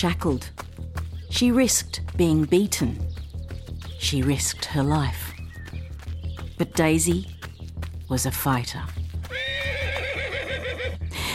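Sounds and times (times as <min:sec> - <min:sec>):
speech: 0:00.0 - 0:00.6, 0:01.3 - 0:03.1, 0:04.0 - 0:05.3, 0:06.6 - 0:07.3, 0:08.1 - 0:09.0
horse hooves clopping: 0:00.0 - 0:11.3
horse whinnying: 0:09.3 - 0:11.0.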